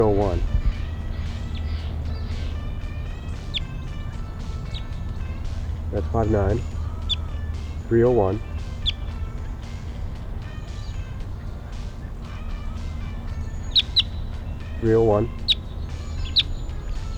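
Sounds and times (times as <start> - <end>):
wild bird high chirps: 0.0 - 17.1
speech: 0.2 - 0.6, 5.9 - 6.8, 7.9 - 8.5, 14.8 - 15.4.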